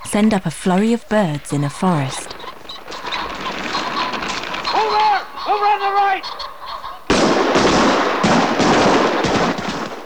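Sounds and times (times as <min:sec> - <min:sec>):
speech: 0:00.2 - 0:02.4, 0:05.5 - 0:06.5
shotgun fire into the air from a shooting party in a forest clearing: 0:02.3 - 0:05.4, 0:07.1 - 0:10.0.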